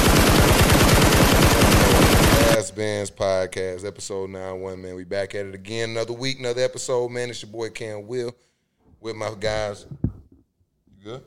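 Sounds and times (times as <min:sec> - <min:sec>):
rapid automatic weapons gunfire: 0:00.0 - 0:02.6
speech: 0:03.2 - 0:10.1, 0:11.0 - 0:11.2.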